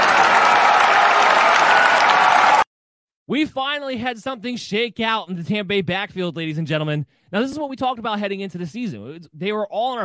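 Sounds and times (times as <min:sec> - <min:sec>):
loud crowd applause and cheering: 0:00.0 - 0:02.7
speech: 0:03.3 - 0:10.0.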